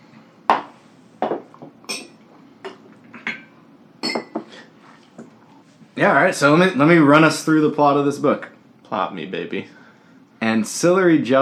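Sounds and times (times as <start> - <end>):
drinking glasses clinking together in a toast: 1.9 - 4.5
speech: 6.0 - 9.8, 10.5 - 11.4.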